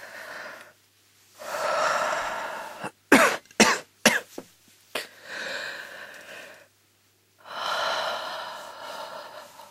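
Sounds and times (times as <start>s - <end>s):
patient with a cold breathing deeply in and out during a doctor's examination: 0.0s - 0.8s, 1.4s - 3.0s, 5.0s - 6.7s, 7.4s - 9.6s
sharp coughs or gasps from a patient with a cold: 2.8s - 4.4s.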